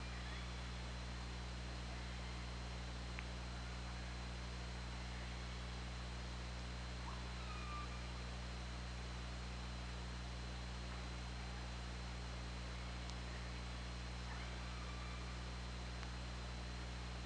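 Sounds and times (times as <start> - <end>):
steady low hum: 0.0 - 17.2
orca tonal calls recorded underwater by hydrophone: 7.1 - 8.1.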